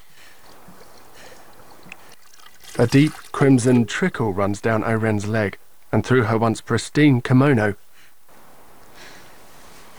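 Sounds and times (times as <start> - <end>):
water splashing and trickling from a small pond water feature: 0.0 - 6.0
speech: 2.8 - 7.8.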